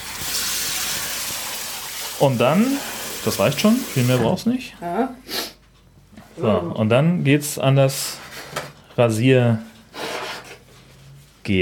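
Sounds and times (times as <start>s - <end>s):
hot water running from a tap: 0.0s - 4.2s
speech: 2.2s - 5.4s, 6.4s - 8.2s, 9.0s - 9.7s, 11.4s - 11.6s.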